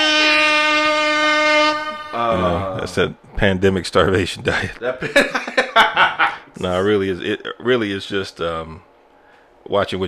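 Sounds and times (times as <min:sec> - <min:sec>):
air horn blast with a bright brassy chord: 0:00.0 - 0:02.8
speech: 0:02.3 - 0:08.9, 0:09.6 - 0:10.0
laughter: 0:04.5 - 0:06.6.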